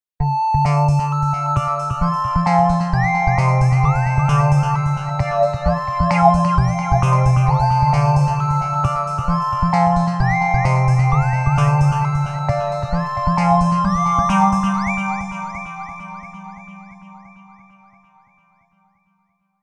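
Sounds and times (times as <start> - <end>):
software synthesizer sequence: 0.6 - 15.7.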